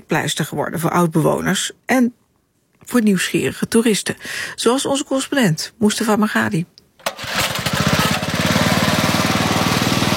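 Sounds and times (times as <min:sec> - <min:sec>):
speech: 0:00.1 - 0:02.2, 0:02.8 - 0:07.3
bamboo raft motor pulled to start on Karian Reservoir: 0:07.0 - 0:10.1.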